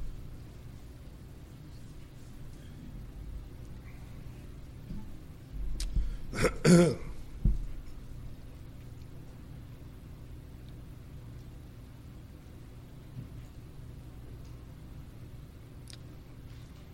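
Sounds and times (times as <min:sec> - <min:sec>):
low steady hum: 0:00.0 - 0:16.9
throat clearing: 0:06.3 - 0:07.2.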